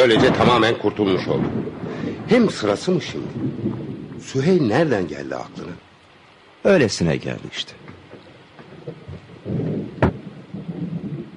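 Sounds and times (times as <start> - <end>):
speech: 0.0 - 5.8, 6.6 - 7.8
rolling thunder: 0.0 - 5.9, 7.8 - 11.3
heavy rain: 0.0 - 11.3.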